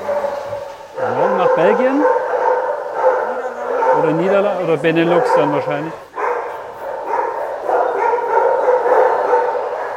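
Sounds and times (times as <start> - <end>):
many dogs barking and yelping in kennels: 0.0 - 9.9
speech: 1.0 - 2.2, 4.7 - 6.1.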